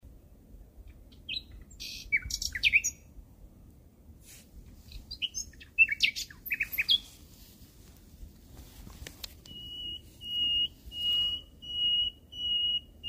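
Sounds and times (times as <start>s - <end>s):
common nightingale song: 0.1s - 3.4s, 4.8s - 7.5s, 8.9s - 13.0s.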